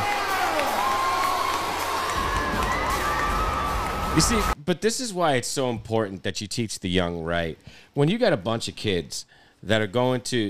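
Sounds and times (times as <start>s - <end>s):
high shouts and whoops: 0.0s - 4.6s
large crowd cheering: 0.0s - 4.6s
speech: 4.2s - 10.4s.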